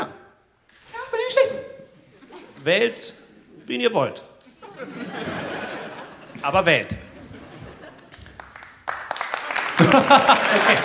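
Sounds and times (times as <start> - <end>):
laughter: 2.0 - 3.8, 4.4 - 8.3, 9.5 - 10.8
speech: 2.6 - 5.4, 6.4 - 7.0, 10.0 - 10.8
crowd applauding: 8.0 - 10.8.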